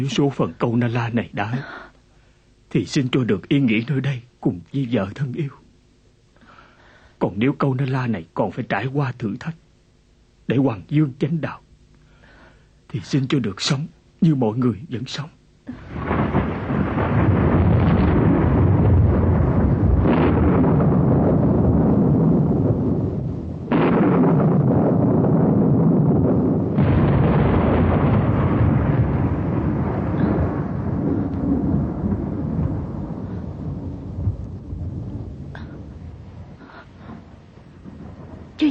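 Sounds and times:
speech: 0.0 - 1.9, 2.7 - 5.6, 7.2 - 9.6, 10.5 - 11.6, 12.9 - 16.1
deep rolling thunder: 15.8 - 38.6.

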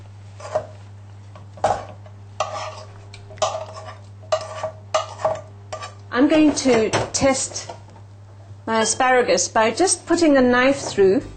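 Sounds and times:
mushrooms being stirred into cheese sauce in a pan: 1.6 - 6.0
speech: 6.2 - 7.8, 8.7 - 11.3
steady low hum: 10.2 - 11.3.

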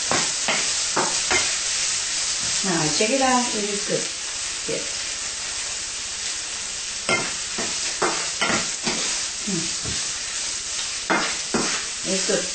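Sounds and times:
pine nuts sizzling in a pan: 0.0 - 12.5
speech: 2.6 - 5.0, 12.1 - 12.5.

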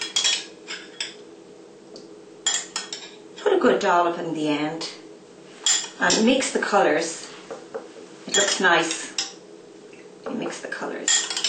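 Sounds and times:
ceramic bowls clinking and knocking as they are handled in a kitchen: 0.0 - 1.2, 2.5 - 3.2, 5.6 - 6.3, 8.3 - 9.4, 11.1 - 11.4
faint steady hum: 0.0 - 11.4
speech: 3.6 - 5.0, 6.0 - 7.3, 8.4 - 9.0.

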